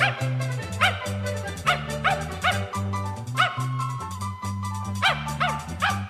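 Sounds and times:
dog barking: 0:00.0 - 0:02.8, 0:03.4 - 0:03.8, 0:05.0 - 0:06.0
bouncy instrumental tune with a prominent bass line: 0:00.0 - 0:06.0.

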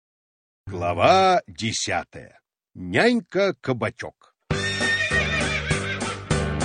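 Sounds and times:
speech: 0:00.7 - 0:04.3
horse neighing: 0:04.5 - 0:06.5.

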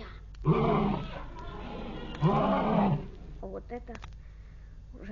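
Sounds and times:
lion roaring: 0:00.4 - 0:03.4
speech: 0:03.7 - 0:04.2.

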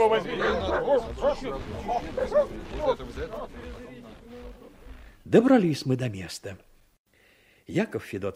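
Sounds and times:
hunting dogs barking and yelping: 0:00.0 - 0:03.8
speech: 0:00.0 - 0:04.2, 0:05.2 - 0:06.7, 0:07.7 - 0:08.3
indistinct human voices: 0:00.0 - 0:05.7.

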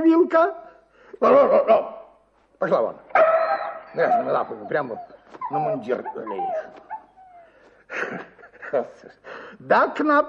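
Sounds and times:
speech: 0:00.0 - 0:00.6, 0:01.2 - 0:02.0, 0:02.6 - 0:03.3, 0:03.9 - 0:06.9, 0:07.9 - 0:10.2
hunting dog whimpering: 0:03.5 - 0:07.6.

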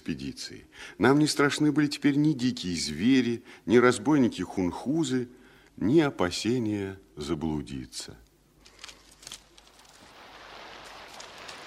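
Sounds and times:
speech: 0:00.2 - 0:08.2
steady rain: 0:08.7 - 0:11.6.

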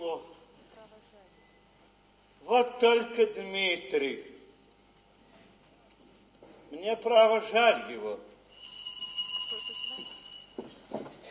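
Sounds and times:
speech: 0:02.5 - 0:04.3, 0:06.7 - 0:08.7
doorbell ringing in a stage play: 0:08.5 - 0:10.7.

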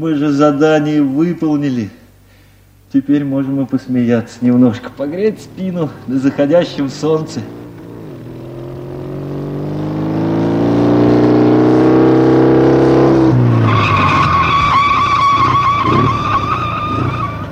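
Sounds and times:
speech: 0:00.0 - 0:02.0, 0:02.9 - 0:07.6
motorcycle engine droning: 0:03.5 - 0:17.5
motorcycle tires screeching in a skid while braking hard: 0:05.3 - 0:17.5.

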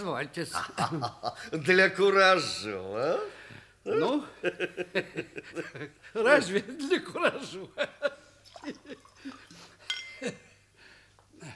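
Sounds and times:
speech: 0:00.0 - 0:08.9, 0:10.2 - 0:10.4
laughter: 0:00.5 - 0:01.5, 0:04.1 - 0:10.4
small shot glasses clinking in a toast: 0:09.9 - 0:10.3.

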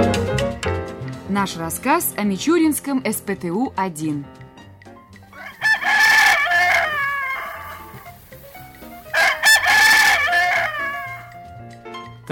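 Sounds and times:
speech: 0:01.3 - 0:04.4
rooster crowing in the morning: 0:05.3 - 0:08.2, 0:09.1 - 0:11.3.

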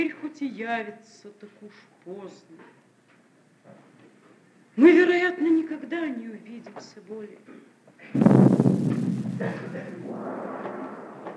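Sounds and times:
speech: 0:00.0 - 0:02.8, 0:04.8 - 0:10.9
cannon salute shot with heavy boom: 0:08.2 - 0:11.3
low rolling rumble of cannon shot: 0:08.2 - 0:11.3.

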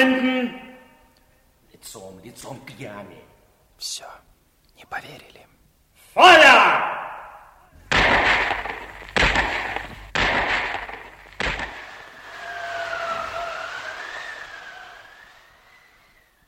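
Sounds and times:
speech: 0:01.9 - 0:07.0
loud gunshots of a firing squad: 0:07.8 - 0:12.8
quieter sustained wavering tone: 0:07.8 - 0:15.7.

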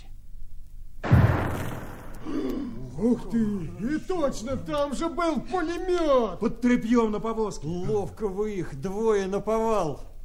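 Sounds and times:
hand grenade explosion near a cart by a burning house: 0:01.0 - 0:02.5
speech: 0:03.0 - 0:10.1.

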